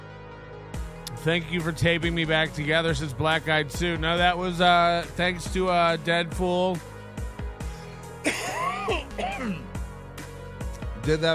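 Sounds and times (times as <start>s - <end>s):
speech: 1.1s - 6.9s, 11.1s - 11.3s
harsh coughing fit: 8.2s - 9.8s.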